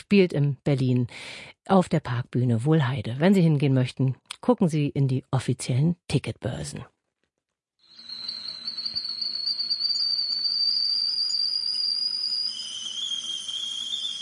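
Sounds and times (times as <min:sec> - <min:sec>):
speech: 0:00.0 - 0:06.9
tea kettle whistling: 0:07.8 - 0:14.2.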